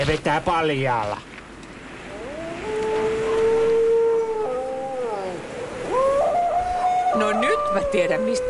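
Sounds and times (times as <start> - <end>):
speech: 0.0 - 1.3, 7.1 - 8.4
person imitating a dog howl: 2.1 - 8.4.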